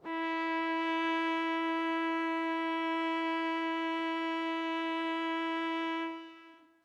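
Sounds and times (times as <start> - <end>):
violin: 0.0 - 6.8.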